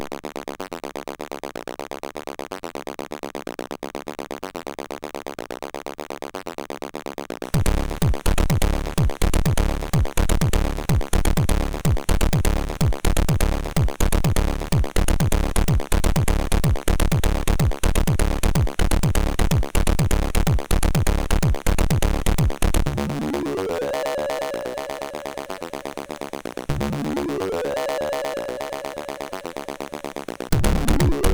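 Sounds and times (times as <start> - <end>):
small techno piece on a MOS6581R2 SID chip: 7.6 - 31.3.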